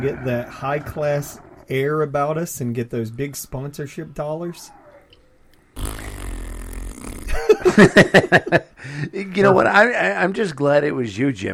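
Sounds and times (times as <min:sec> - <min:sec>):
speech: 0:00.0 - 0:04.8, 0:07.6 - 0:11.5
person blowing a raspberry with lips imitating a fart: 0:05.8 - 0:07.6
person laughing: 0:07.2 - 0:09.1.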